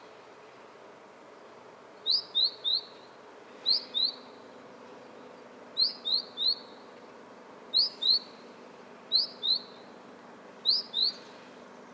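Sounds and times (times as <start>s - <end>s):
faint steady low hiss: 0.0s - 11.9s
great tit calls, Parus major: 2.0s - 6.9s, 7.7s - 8.5s, 9.1s - 10.0s, 10.6s - 11.4s.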